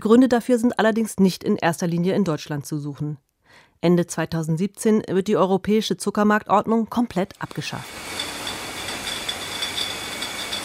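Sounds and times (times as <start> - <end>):
speech: 0.0 - 8.1
industrial machinery on a ketchup bottling line hissing: 7.8 - 10.6.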